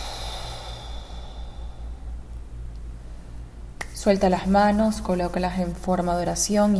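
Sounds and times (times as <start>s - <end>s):
deep inhale and exhale during breathing exercise: 0.0s - 2.2s
steady low hum: 0.0s - 6.7s
speech: 4.0s - 6.7s.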